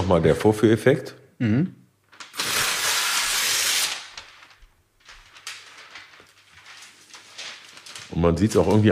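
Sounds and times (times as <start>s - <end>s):
speech: 0.1s - 1.8s, 8.2s - 8.9s
sheet of white meat-counter paper crinkling and rustling while handled: 2.1s - 8.9s.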